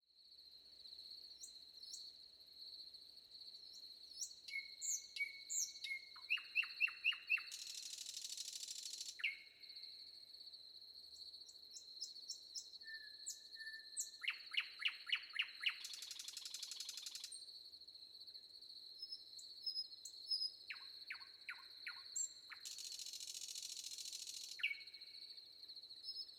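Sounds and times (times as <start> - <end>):
wind: 0.1 - 26.3
crickets chirping: 0.3 - 26.3
nightingale singing: 3.7 - 9.6, 11.7 - 17.4, 19.0 - 25.3, 26.0 - 26.3.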